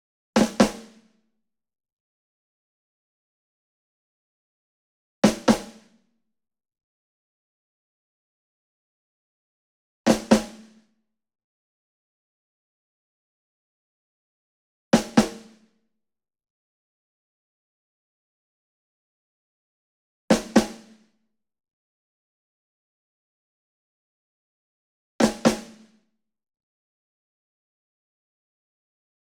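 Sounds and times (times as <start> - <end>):
ensemble snare drum group: 0.4 - 1.0, 5.2 - 5.8, 10.1 - 10.7, 15.0 - 15.5, 20.3 - 20.9.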